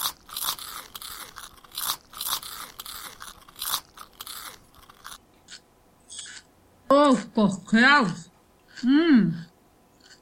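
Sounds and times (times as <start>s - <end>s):
crunchy potato chips being eaten: 0.0s - 5.2s
chewing potato chips: 0.0s - 6.5s, 10.0s - 10.2s
speech: 7.1s - 9.5s.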